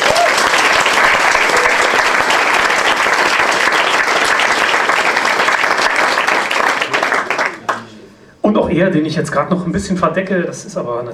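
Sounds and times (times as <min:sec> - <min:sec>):
sizable audience applauding at a literary reading stage: 0:00.0 - 0:08.0
speech: 0:08.8 - 0:11.1.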